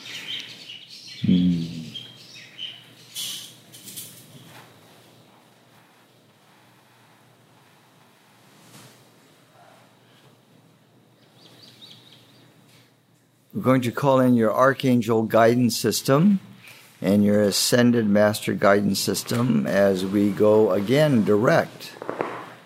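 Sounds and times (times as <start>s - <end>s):
birds chirping: 0.0s - 3.3s, 11.2s - 12.6s
speech: 1.2s - 1.6s, 13.6s - 22.1s.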